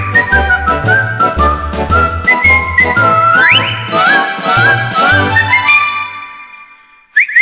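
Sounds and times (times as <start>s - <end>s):
clear tuneful whistled melody with sliding notes: 0.0s - 7.4s.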